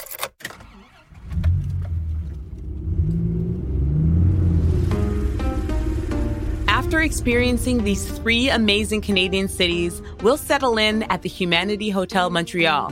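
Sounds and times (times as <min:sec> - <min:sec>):
car engine humming from inside the cabin while driving through the city: 0:00.6 - 0:12.3
speech: 0:07.0 - 0:12.9.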